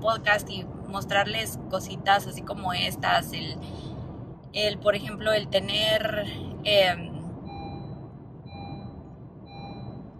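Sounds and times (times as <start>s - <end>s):
speech: 0.0s - 3.8s, 4.5s - 7.1s
constant low vehicle engine rumble: 0.0s - 10.1s
vehicle reversing alarm beeps: 7.4s - 10.1s.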